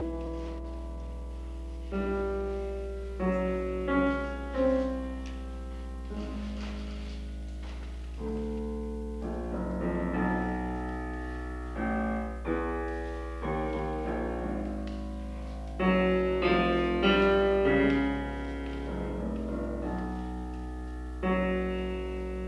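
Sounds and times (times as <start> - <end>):
piano and string quartet playing a quintet: 0.0 - 22.4.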